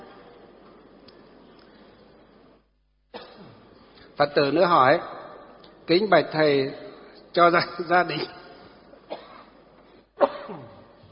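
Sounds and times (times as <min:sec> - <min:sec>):
person coughing: 0:03.1 - 0:03.6, 0:09.1 - 0:09.6, 0:10.2 - 0:11.0
speech: 0:04.2 - 0:05.2, 0:05.9 - 0:06.8, 0:07.4 - 0:08.4.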